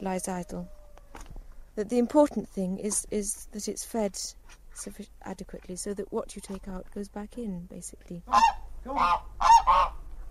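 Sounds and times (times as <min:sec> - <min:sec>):
speech: 0:00.0 - 0:00.8, 0:01.8 - 0:09.5
geese on a smallholding honking: 0:08.3 - 0:10.0.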